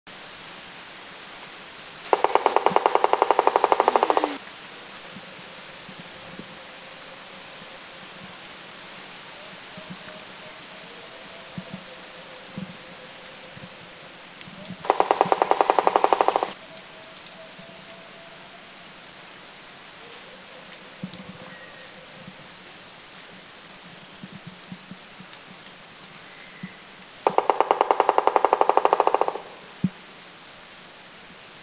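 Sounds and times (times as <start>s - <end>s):
White-bellied Woodpecker drumming in the Philippines: 2.1s - 4.4s, 14.8s - 18.3s, 27.2s - 29.8s.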